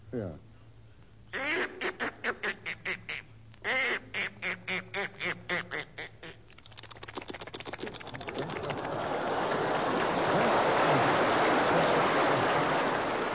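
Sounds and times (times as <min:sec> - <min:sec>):
speech: 0:00.1 - 0:00.5
voice imitating duck quacks: 0:01.3 - 0:08.8
voice imitating duck entering water with splashing sound: 0:06.3 - 0:08.9
laughter: 0:07.8 - 0:13.3.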